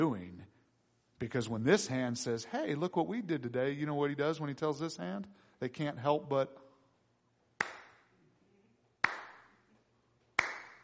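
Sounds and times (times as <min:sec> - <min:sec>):
speech: 0:00.0 - 0:00.4, 0:01.2 - 0:06.6
sharp hand claps in a reverberant room: 0:07.6 - 0:08.1, 0:09.0 - 0:09.6, 0:10.3 - 0:10.8.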